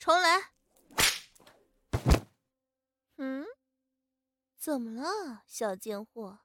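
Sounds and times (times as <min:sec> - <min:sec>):
speech: 0:00.0 - 0:00.5, 0:04.6 - 0:06.4
loud whip lashes cracking: 0:01.0 - 0:01.4.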